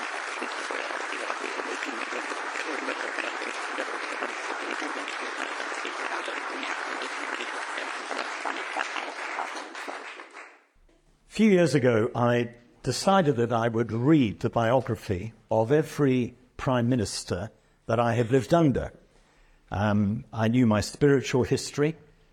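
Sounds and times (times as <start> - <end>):
audience applause thanking the musicians, sound engineer and team: 0.0 - 10.7
speech: 11.4 - 19.0, 19.7 - 22.3.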